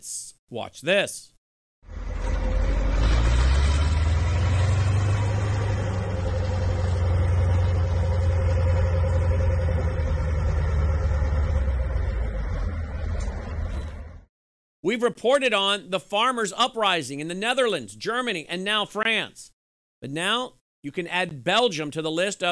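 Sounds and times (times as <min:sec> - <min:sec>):
speech: 0:00.0 - 0:02.0, 0:14.8 - 0:22.5
heavy tractor and farm vehicle engines rumbling in a convoy: 0:01.9 - 0:14.2.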